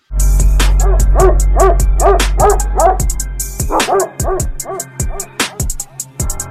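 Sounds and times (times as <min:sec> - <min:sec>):
dog barking: 0:00.8 - 0:05.8.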